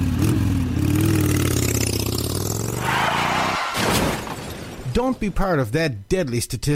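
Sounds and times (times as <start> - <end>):
motorcycle engine revving: 0.0 - 3.5
speech: 5.0 - 6.7.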